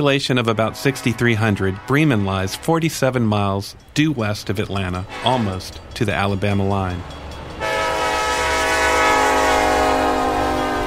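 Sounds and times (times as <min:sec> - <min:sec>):
speech: 0:00.0 - 0:07.2
train rumbling through the town of Bremen Georgia: 0:00.0 - 0:10.8
train horn blasting in Bremen Georgia: 0:00.5 - 0:03.0, 0:05.0 - 0:05.7, 0:07.6 - 0:10.8.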